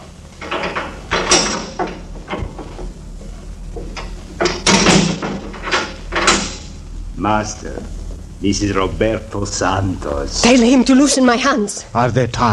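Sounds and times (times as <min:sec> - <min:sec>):
door creaking and clattering open as a prisoner is brought in: 0:00.0 - 0:06.8
speech: 0:07.2 - 0:12.5.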